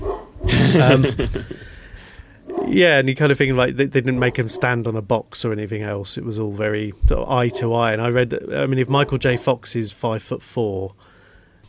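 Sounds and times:
dog barking: 0.0 - 0.5, 2.4 - 2.8, 4.3 - 4.8, 7.4 - 7.8, 8.9 - 9.6
laughter: 0.5 - 1.9
speech: 0.7 - 1.7, 2.7 - 11.1.

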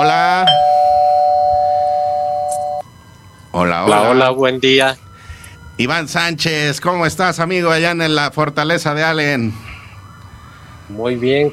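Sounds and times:
doorbell electronic buzz: 0.0 - 2.9
speech: 3.6 - 5.0, 5.8 - 9.6, 10.9 - 11.5.

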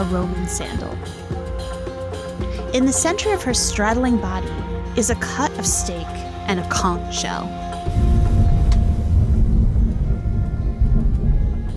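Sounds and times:
speech: 0.0 - 1.7, 2.7 - 8.0
thunder rumbling: 7.8 - 11.7.

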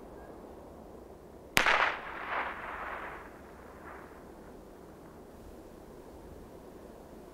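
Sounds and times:
blank gunshot fired as an archaeoacoustic test at a prehispanic settlement: 1.6 - 4.2.

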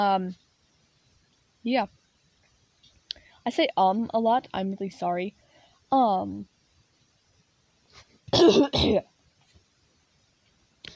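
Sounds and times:
speech: 0.0 - 0.5, 1.6 - 2.0, 3.4 - 6.5, 8.3 - 9.1
person clearing throat: 8.3 - 9.0
person coughing: 8.3 - 9.1.

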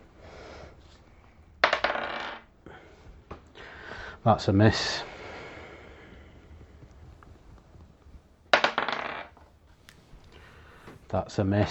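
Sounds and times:
dice rolling on a hard table: 1.6 - 2.6, 8.5 - 11.6
speech: 4.2 - 5.1, 11.1 - 11.6.

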